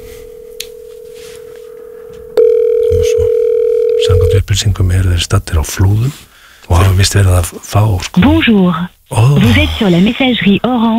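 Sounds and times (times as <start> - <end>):
telephone ringing tone on an outgoing call: 0.2 - 4.4
speech: 4.5 - 10.9.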